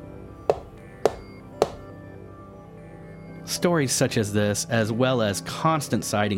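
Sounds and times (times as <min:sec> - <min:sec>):
knocking on the passenger rear window of a car driving at 70 miles an hour: 0:00.5 - 0:01.8
speech: 0:03.5 - 0:06.3.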